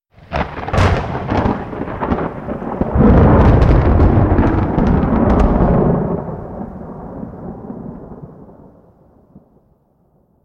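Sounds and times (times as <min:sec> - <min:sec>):
lightning strike in a thunderstorm: 0:00.2 - 0:08.2.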